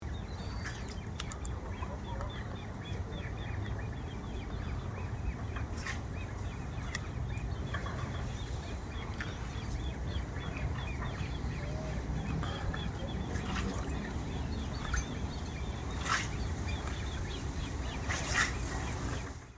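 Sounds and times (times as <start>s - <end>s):
great crested grebe with young: 0.0s - 19.5s.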